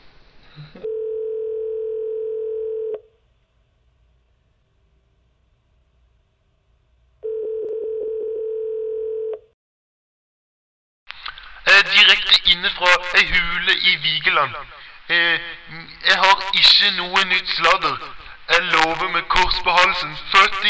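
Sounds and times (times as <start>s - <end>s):
speech: 0.6s - 1.0s, 12.5s - 20.6s
telephone ringing tone while placing a call: 0.8s - 3.1s, 7.2s - 9.5s.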